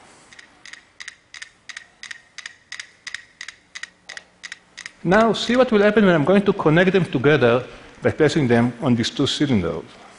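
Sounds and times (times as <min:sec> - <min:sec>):
five metronomes clicking out of phase: 0:00.3 - 0:05.8
speech: 0:05.0 - 0:10.1.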